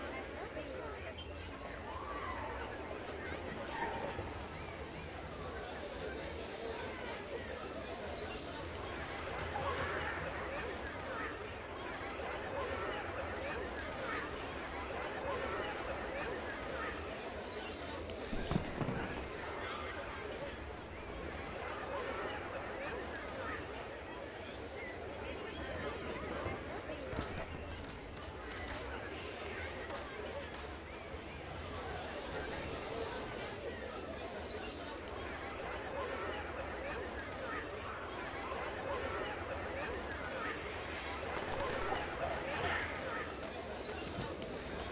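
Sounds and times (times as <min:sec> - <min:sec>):
market ambience: 0:00.0 - 0:44.8.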